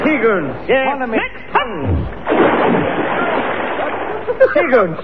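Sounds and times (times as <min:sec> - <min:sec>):
speech: 0:00.2 - 0:02.2, 0:04.4 - 0:05.0
splash of a person thrown into water: 0:01.9 - 0:04.2.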